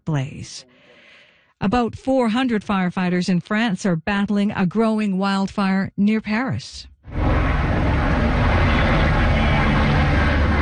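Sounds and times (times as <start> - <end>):
speech: 0.1 - 0.8, 1.6 - 6.9
helicopter engine and rotors roaring over a wildfire: 7.1 - 10.6.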